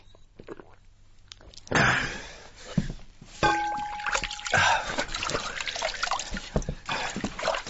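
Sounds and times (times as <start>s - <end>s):
water trickling and dripping: 3.4s - 7.6s
water swished around the mouth with gurgling: 3.9s - 7.6s.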